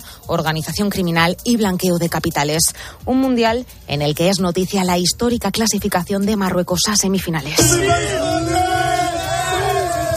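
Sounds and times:
speech: 0.3 - 8.7
large crowd of football fans cheering and chanting in a city square: 7.6 - 10.1.

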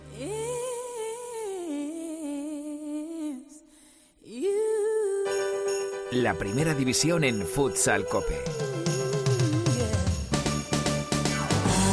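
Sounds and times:
upbeat festive Christmas pop song: 0.0 - 3.5, 4.2 - 11.9
bright jingling bells: 5.3 - 10.9
speech: 6.1 - 9.0.

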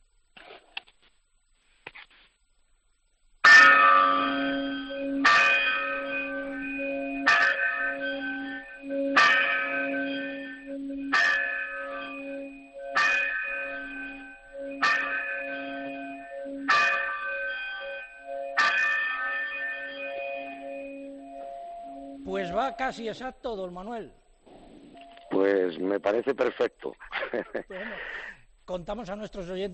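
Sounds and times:
church bells ringing: 3.4 - 24.2
speech: 22.7 - 24.2, 25.4 - 29.7
laughter: 26.4 - 28.2.

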